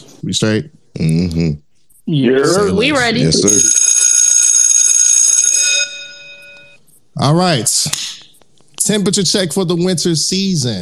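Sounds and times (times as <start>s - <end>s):
speech: 0.2s - 3.9s, 7.2s - 8.0s, 8.8s - 10.7s
loud electric school bell ringing: 3.4s - 6.8s.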